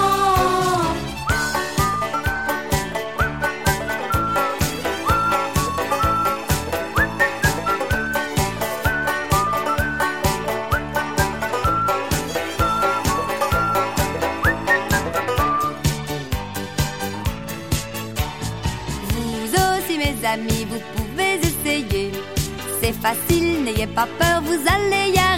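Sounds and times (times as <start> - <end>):
full band playing with a driving beat: 0.0 - 19.8, 20.5 - 25.3
person whistling a bouncy melody: 1.2 - 16.0.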